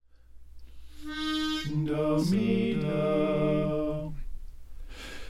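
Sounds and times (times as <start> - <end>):
slow music mix: 0.5 - 3.6.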